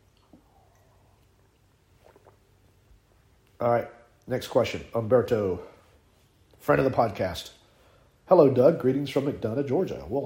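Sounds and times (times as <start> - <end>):
swallowing: 0.0 - 2.8
person sipping coffee: 0.0 - 3.6
soft wet mouth sounds: 0.0 - 3.6
low steady hum: 0.0 - 10.2
speech: 3.6 - 5.7, 6.6 - 7.6, 8.3 - 10.2.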